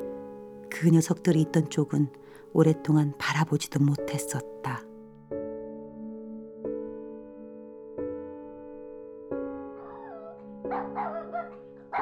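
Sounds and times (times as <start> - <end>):
speech: 0.8 - 4.9
dog barking mournfully: 9.8 - 12.0.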